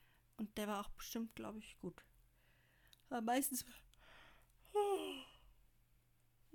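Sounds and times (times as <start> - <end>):
speech: 0.4 - 2.1, 3.1 - 3.9
person yawning: 4.7 - 5.4.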